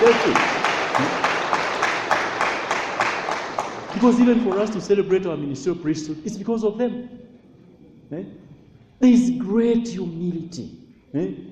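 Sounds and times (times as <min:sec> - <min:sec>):
audience applause: 0:00.0 - 0:05.0
speech: 0:00.1 - 0:01.2, 0:04.0 - 0:07.3, 0:08.1 - 0:08.4, 0:09.0 - 0:11.5.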